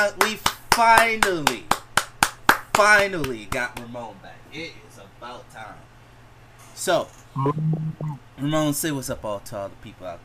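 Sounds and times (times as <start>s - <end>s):
speech: 0.0s - 1.8s, 2.8s - 5.9s, 6.8s - 10.2s
hands clapping: 0.2s - 3.9s.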